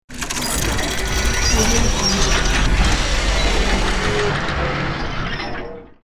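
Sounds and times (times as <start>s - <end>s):
mechanical transformation: 0.1s - 5.6s.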